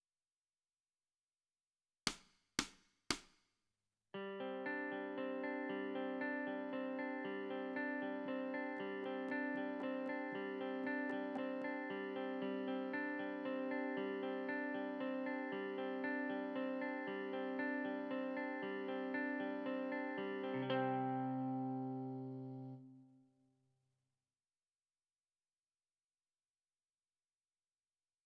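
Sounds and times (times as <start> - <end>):
guitar: 4.2 - 23.2.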